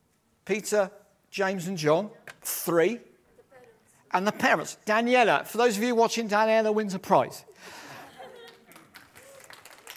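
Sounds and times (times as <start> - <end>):
speech: 0.5 - 3.1, 4.1 - 7.8
laughter: 7.8 - 9.0
crowd clapping: 8.3 - 9.9.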